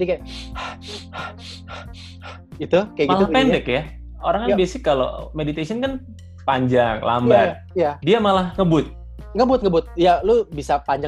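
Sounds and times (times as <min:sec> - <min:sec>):
speech: 0:00.0 - 0:11.0
person breathing fast and deep: 0:00.3 - 0:02.6
low steady hum: 0:03.1 - 0:03.6.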